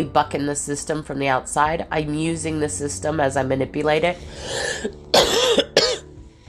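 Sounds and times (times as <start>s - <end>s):
speech: 0.0s - 5.2s
harsh coughs: 4.5s - 6.1s.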